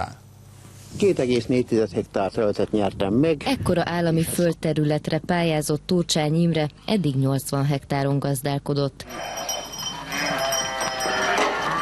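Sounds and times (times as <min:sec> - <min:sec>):
steady outdoor hiss: 0:00.0 - 0:10.1
speech: 0:00.9 - 0:09.5
farm flock of sheep bleating: 0:09.0 - 0:11.8.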